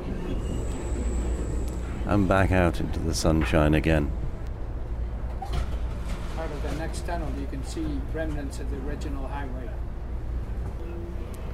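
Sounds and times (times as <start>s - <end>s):
thin metallic squeal from train wheels on tight curve: 0.0s - 2.2s
train rumbling steeply downhill through a tight curve: 0.0s - 11.5s
speech: 2.1s - 4.2s, 6.8s - 9.8s.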